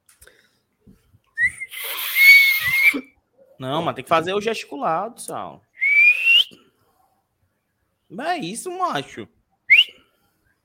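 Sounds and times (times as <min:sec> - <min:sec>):
person imitating a referee's final whistle with their mouth: 0:01.4 - 0:03.2, 0:05.8 - 0:06.6, 0:09.7 - 0:09.9
speech: 0:03.0 - 0:05.7, 0:08.1 - 0:09.4.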